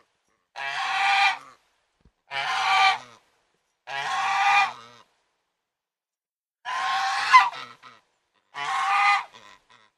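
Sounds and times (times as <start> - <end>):
domestic goose raspy honking: 0.6 - 1.6, 2.3 - 3.2, 3.9 - 5.1, 6.7 - 9.9.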